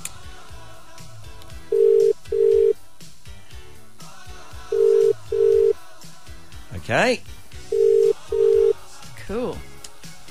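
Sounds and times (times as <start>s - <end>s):
soft music: 0.0s - 10.2s
double-beep phone call ringback tones: 1.7s - 2.8s, 4.8s - 5.8s, 7.7s - 8.8s
speech: 6.9s - 7.3s.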